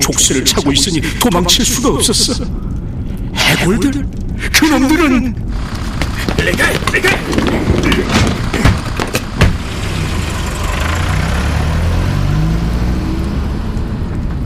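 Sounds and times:
speech: 0.0 - 2.7, 3.5 - 5.8, 6.4 - 8.7
Kia Bongo van engine driving away: 5.5 - 14.4
sharp knocks: 6.0 - 9.8.

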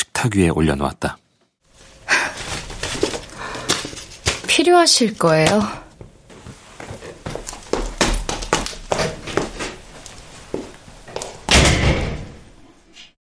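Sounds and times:
speech: 0.2 - 1.2, 4.6 - 5.8
footsteps: 1.7 - 12.3
front door blown hard shut by a heavy gust of wind: 11.5 - 12.5.

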